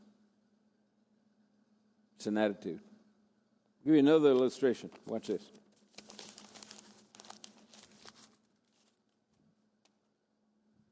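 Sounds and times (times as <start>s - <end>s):
speech: 2.2s - 2.9s, 3.8s - 5.6s
piece of paper crumpled in a hand and dropped: 4.9s - 9.3s.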